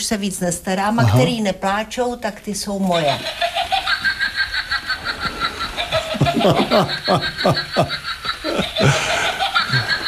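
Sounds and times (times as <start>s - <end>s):
speech: 0.0s - 3.8s, 6.4s - 8.2s, 8.8s - 9.1s
steady hum: 0.0s - 10.0s
battery-powered witch figurine cackling: 3.0s - 10.0s.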